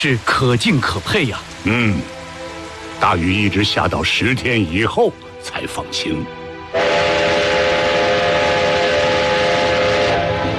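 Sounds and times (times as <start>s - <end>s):
speech: 0.0s - 2.2s, 3.0s - 6.9s
sustained whistle tone: 6.8s - 10.5s
train rumbling on railway tracks: 6.8s - 10.5s.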